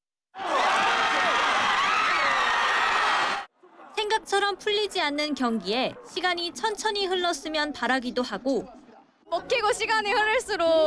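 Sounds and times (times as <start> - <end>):
large outdoor crowd in red cheering and gasping at a football match: 0.4 - 3.5
speech: 4.2 - 10.8.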